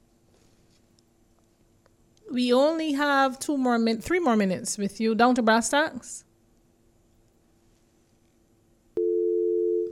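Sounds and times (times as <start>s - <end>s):
speech: 2.3s - 6.3s
telephone dial tone after a dropped call: 9.0s - 9.8s.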